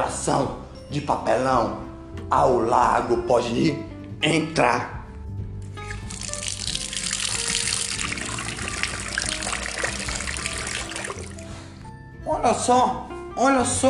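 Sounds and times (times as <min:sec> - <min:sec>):
speech: 0:00.2 - 0:05.0, 0:12.4 - 0:13.8
rushing, splashing water of a waterfall as someone bathes under it: 0:06.1 - 0:11.5.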